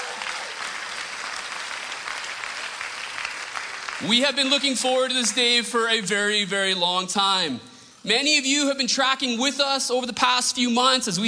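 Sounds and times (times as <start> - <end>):
church audience applauding at an Easter gathering: 0.0 - 5.7
speech: 4.0 - 11.2.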